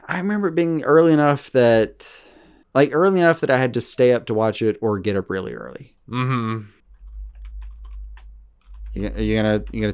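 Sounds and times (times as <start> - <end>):
speech: 0.2 - 6.8, 9.0 - 9.9
steady low hum: 6.8 - 9.9
keyboard keys tapping: 6.9 - 9.9.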